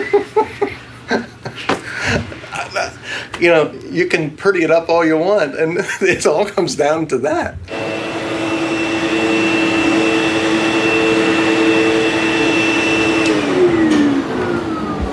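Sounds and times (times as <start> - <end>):
laughter: 0.0 - 3.0
speech: 1.1 - 1.3, 3.4 - 7.8
vacuum cleaner running: 7.7 - 15.1.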